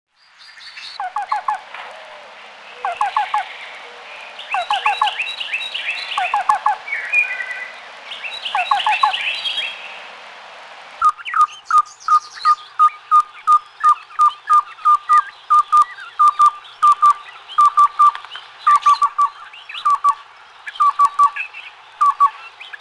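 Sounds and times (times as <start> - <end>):
black-billed cuckoo calling: 0.8 - 9.9, 11.0 - 22.7.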